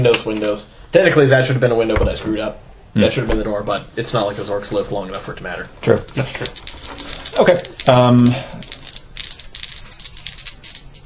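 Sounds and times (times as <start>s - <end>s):
speech: 0.0s - 8.8s
deck of playing cards being shuffled during a tabletop game: 6.0s - 11.0s.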